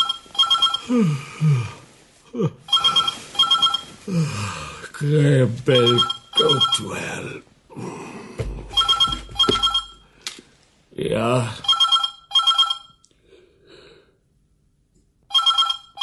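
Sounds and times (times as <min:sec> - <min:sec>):
telephone ringing with electronic warbling trills: 0:00.0 - 0:00.9, 0:02.7 - 0:04.0, 0:05.7 - 0:07.1, 0:08.7 - 0:10.1, 0:11.6 - 0:13.0, 0:15.3 - 0:16.0
speech: 0:00.9 - 0:02.8, 0:04.1 - 0:08.2, 0:11.0 - 0:11.7.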